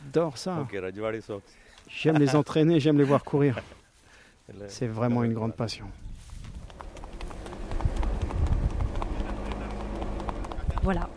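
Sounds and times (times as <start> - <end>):
speech: 0.1 - 3.8, 4.5 - 6.0, 10.8 - 11.1
laughter: 2.0 - 3.7, 9.1 - 10.0
low rumble of vehicle noise: 6.4 - 11.1
trotter horse hooves clip-clopping on a road: 6.4 - 11.1.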